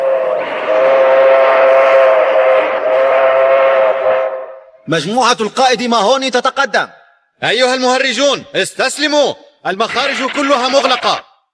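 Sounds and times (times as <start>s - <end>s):
train horn blaring: 0.0s - 4.8s
speech: 4.9s - 11.3s.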